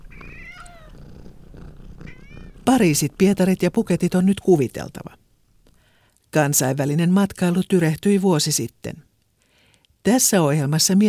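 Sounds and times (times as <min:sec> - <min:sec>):
cat meowing: 0:00.0 - 0:02.7
cat purring: 0:00.0 - 0:06.0
speech: 0:02.7 - 0:05.2, 0:06.3 - 0:09.1, 0:10.0 - 0:11.0.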